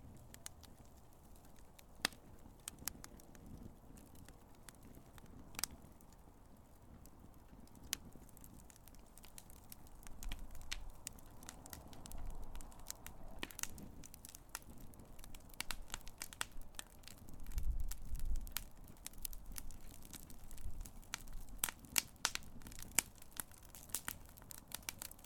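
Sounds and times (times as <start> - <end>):
low steady roar of burning wood fire: 0.0 - 25.2
wood fire crackling and popping: 0.0 - 25.2.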